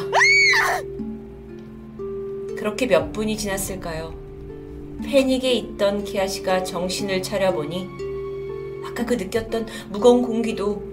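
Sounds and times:
woman screaming: 0.0s - 0.9s
speech: 2.6s - 4.2s, 5.0s - 8.0s, 8.9s - 10.9s.

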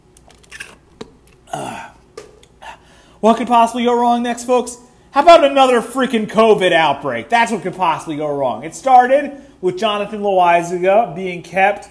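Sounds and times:
small wet mouth clicks: 0.2s - 2.8s
sipping coffee: 0.3s - 2.8s
slurping gulp and swallow of hot drink: 0.4s - 0.8s
speech: 3.2s - 11.8s.

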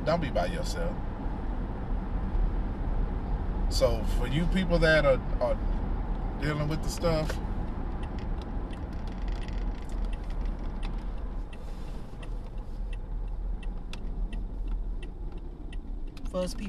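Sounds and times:
speech: 0.0s - 1.1s, 3.7s - 5.7s, 6.4s - 7.5s, 16.4s - 16.6s
car driving in traffic: 0.0s - 16.6s
faint irregular ticking clicks: 7.3s - 16.6s.

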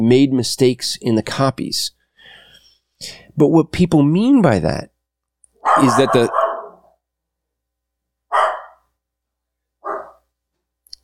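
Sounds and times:
speech: 0.0s - 2.0s, 3.0s - 4.9s, 5.7s - 6.4s
dog barking: 5.6s - 7.0s, 8.3s - 8.9s, 9.8s - 10.3s.

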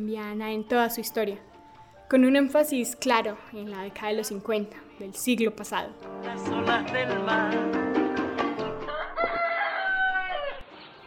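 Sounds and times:
speech: 0.0s - 1.5s, 2.1s - 7.9s
rooster crowing: 8.8s - 10.7s.

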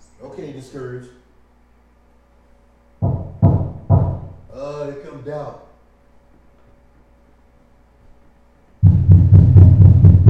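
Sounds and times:
speech: 0.2s - 1.2s, 5.2s - 5.7s
heavy booming knocks on a door: 3.0s - 4.4s, 8.8s - 10.2s.

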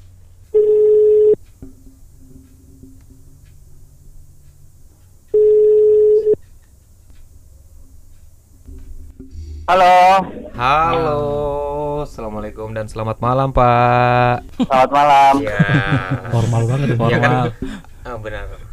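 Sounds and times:
phone line ringback tone: 0.5s - 1.4s, 5.4s - 6.4s
speech: 9.7s - 18.6s
laughter: 10.2s - 12.0s, 14.5s - 17.9s.

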